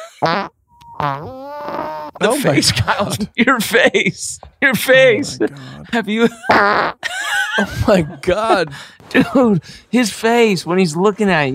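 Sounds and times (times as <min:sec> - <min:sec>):
speech: 0:00.2 - 0:01.4, 0:02.2 - 0:11.5
farts: 0:00.2 - 0:02.2, 0:06.5 - 0:07.0
laughter: 0:02.2 - 0:09.7.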